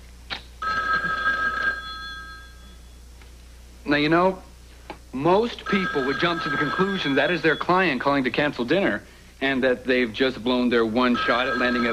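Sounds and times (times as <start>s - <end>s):
telephone ringing with an electronic trill: 0.6s - 3.0s, 5.6s - 8.1s, 11.0s - 11.9s
speech: 3.9s - 4.5s, 5.1s - 11.9s.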